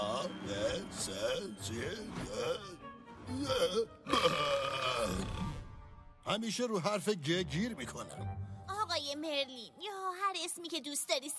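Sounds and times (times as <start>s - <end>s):
speech: 0.0s - 5.5s, 6.3s - 8.5s, 9.2s - 11.3s
person burping out letter-like sounds: 2.3s - 5.8s.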